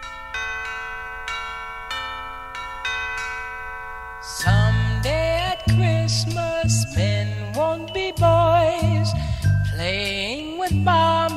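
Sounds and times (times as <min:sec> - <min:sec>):
bell ringing: 0:00.0 - 0:11.3.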